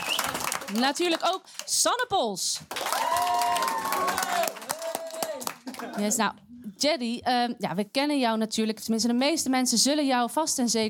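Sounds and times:
audience applause greeting guests at a live event: 0:00.0 - 0:01.4, 0:02.7 - 0:06.1
speech: 0:00.7 - 0:04.6, 0:05.9 - 0:10.8.

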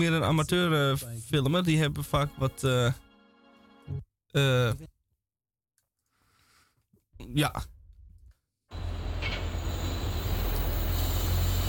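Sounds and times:
speech: 0:00.0 - 0:03.0, 0:03.9 - 0:04.9, 0:07.2 - 0:07.7
suspension railway train rolling past at Oberbarmen station: 0:08.7 - 0:11.6
faint high squeal of suspension railway train: 0:08.8 - 0:11.6.

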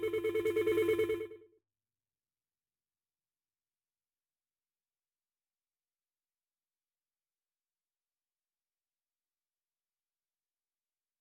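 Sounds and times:
telephone ringing with rapid electronic trill during call transfer: 0:00.0 - 0:01.4.

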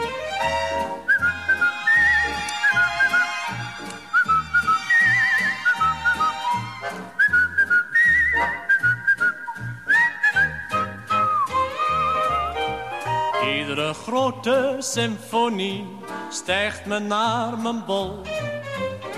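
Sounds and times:
bright whistled melody in a song: 0:00.0 - 0:14.2
bouncy accompaniment with a steady beat: 0:00.0 - 0:19.1
speech: 0:14.1 - 0:18.5.

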